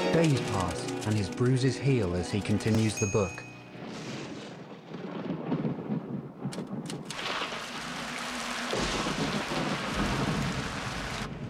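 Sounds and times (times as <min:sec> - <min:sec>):
speech: 0:00.1 - 0:03.5
heavy rain: 0:03.8 - 0:11.4
rolls of thunder: 0:03.8 - 0:11.4.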